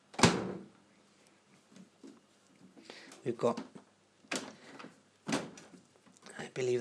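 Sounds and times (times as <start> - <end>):
speech: 3.2 - 3.8, 6.6 - 6.7
home kitchen fridge door shutting with a thump: 5.3 - 5.6.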